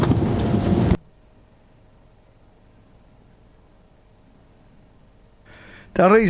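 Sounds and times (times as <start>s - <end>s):
thunderstorm with wind and hail: 0.0s - 1.0s
speech: 6.0s - 6.2s.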